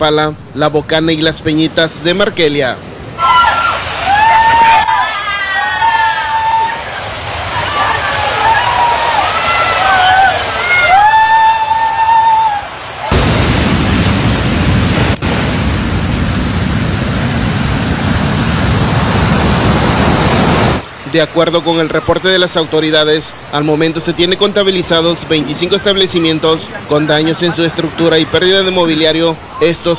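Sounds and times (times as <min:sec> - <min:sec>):
speech: 0:00.0 - 0:02.9, 0:21.2 - 0:29.9
high surf waves crashing on beach: 0:00.0 - 0:29.9.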